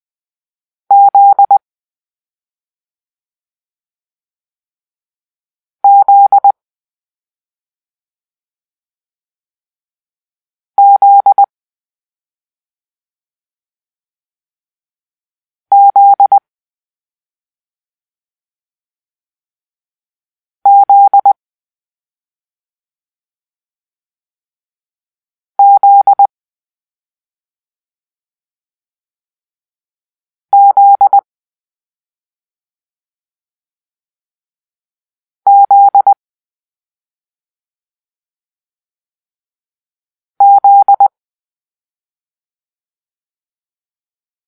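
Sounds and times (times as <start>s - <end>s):
morse code for the letter Z: 0.9s - 1.6s, 5.9s - 6.5s, 10.8s - 11.5s, 15.7s - 16.4s, 20.7s - 21.4s, 25.6s - 26.3s, 30.6s - 31.2s, 35.5s - 36.2s, 40.4s - 41.1s.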